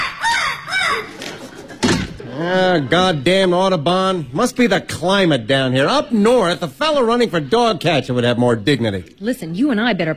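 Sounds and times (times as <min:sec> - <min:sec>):
macaw squawking: 0:00.0 - 0:01.2
laughter: 0:00.8 - 0:02.9
speech: 0:02.4 - 0:10.1.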